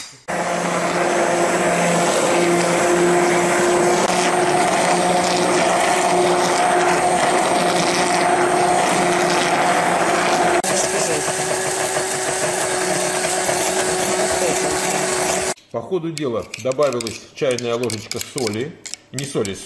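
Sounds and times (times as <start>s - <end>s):
electric mixer whirring while whisking batter: 0.3s - 15.6s
speech: 16.0s - 19.6s.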